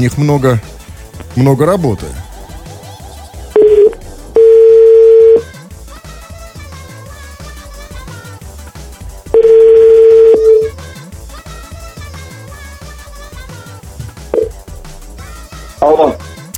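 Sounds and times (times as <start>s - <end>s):
speech: 0.0s - 0.8s, 1.4s - 2.2s
music: 0.0s - 16.5s
phone line ringback tone: 3.6s - 5.4s, 9.4s - 10.7s, 14.4s - 14.6s
short beeps: 3.6s - 5.4s, 9.4s - 10.7s.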